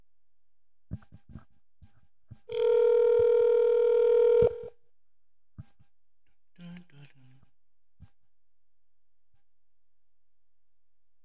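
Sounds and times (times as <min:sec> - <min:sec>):
buzzing telephone ringback tone on an outgoing call: 0:02.5 - 0:04.7
clicks on an outgoing telephone line: 0:02.5 - 0:04.7.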